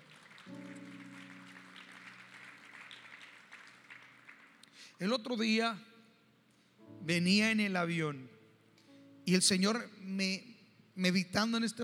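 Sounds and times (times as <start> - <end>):
audience applauding: 0.0 - 4.9
speech: 5.0 - 5.9, 7.1 - 8.3, 9.3 - 11.8.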